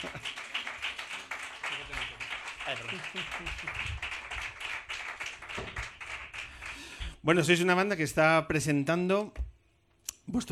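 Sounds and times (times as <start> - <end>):
speech: 0.0 - 0.4, 2.7 - 4.1, 7.2 - 9.4, 10.3 - 10.5
laughter: 0.0 - 0.7, 1.6 - 4.0
small audience clapping: 0.0 - 7.1.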